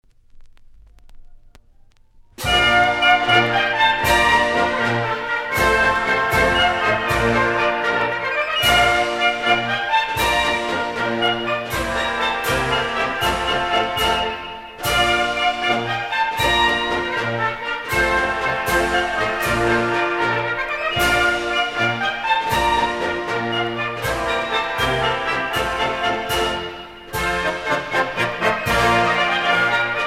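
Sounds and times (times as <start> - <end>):
military marching music: 2.1 - 30.0.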